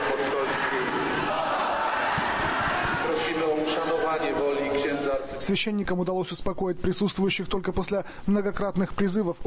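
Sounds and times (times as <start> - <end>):
church audience applauding: 0.0 - 4.2
large church crowd roaring and shouting: 0.0 - 5.0
speech: 3.6 - 9.4.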